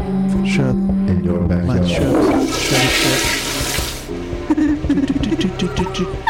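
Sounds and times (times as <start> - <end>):
speech: 0.1 - 3.5, 4.5 - 6.2
toilet flushing: 1.8 - 4.1
water gurgling down a toilet drain: 1.9 - 4.1.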